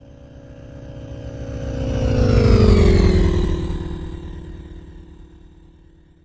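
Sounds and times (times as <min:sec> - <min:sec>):
sci-fi vehicle flying by at 200 MPH: 0:00.0 - 0:06.1.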